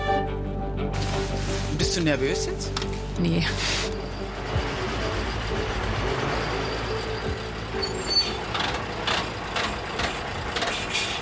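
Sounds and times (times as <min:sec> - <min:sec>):
fire brigade command vehicle engine and road rumble: 0:00.8 - 0:11.2
speech: 0:01.8 - 0:03.9.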